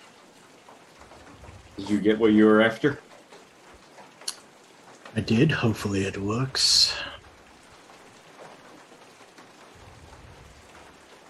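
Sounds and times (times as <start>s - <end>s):
steady rain pouring outdoors: 0.0s - 11.2s
speech: 1.8s - 3.1s, 5.2s - 7.1s.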